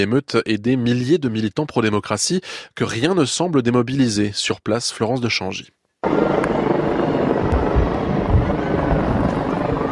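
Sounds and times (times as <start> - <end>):
speech: 0.0 - 5.8
police helicopters flying over Causeway Bay on Hong Kong Island: 6.0 - 9.8.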